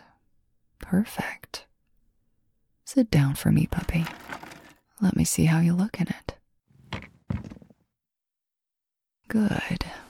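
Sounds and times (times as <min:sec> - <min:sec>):
speech: 0:00.8 - 0:01.7, 0:02.9 - 0:04.4, 0:05.0 - 0:07.0, 0:09.3 - 0:10.0
office door being locked: 0:06.8 - 0:07.7.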